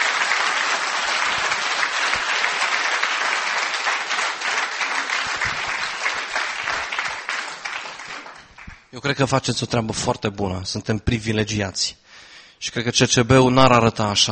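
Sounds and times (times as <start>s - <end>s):
applause from a sizable audience: 0.0s - 9.0s
speech: 9.0s - 12.0s, 12.6s - 14.3s.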